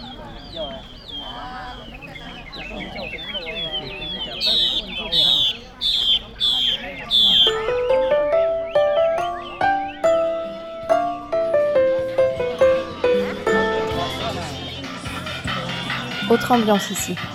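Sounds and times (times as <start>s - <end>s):
bright repeated whistling bird calls: 0.0s - 11.2s
many caged songbirds chirping and trilling at a bird market in Vietnam: 0.0s - 11.6s
murmur of people talking at a crowded bird market: 0.0s - 17.3s
speech: 16.4s - 17.3s.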